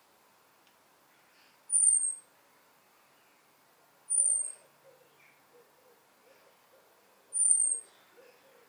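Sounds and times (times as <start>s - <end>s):
faint background noise: 0.0s - 8.6s
European robin whistling: 1.7s - 2.2s, 4.1s - 4.6s, 7.4s - 7.8s.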